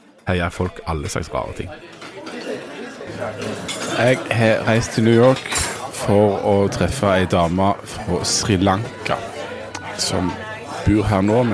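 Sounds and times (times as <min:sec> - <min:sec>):
murmur of indistinct chatter from other diner tables: 0:00.0 - 0:11.5
speech: 0:00.3 - 0:02.0, 0:03.1 - 0:09.3, 0:10.0 - 0:11.5
cutlery and dishes clinking in a diner: 0:01.8 - 0:07.6.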